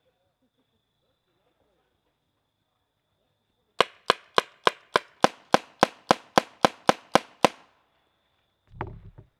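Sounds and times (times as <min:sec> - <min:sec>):
paintball gun shots: 0:03.8 - 0:07.7.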